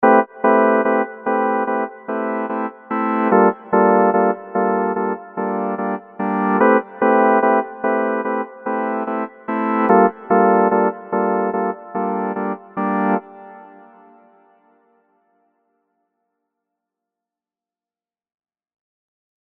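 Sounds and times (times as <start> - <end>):
synth pad: 0.1 - 14.5.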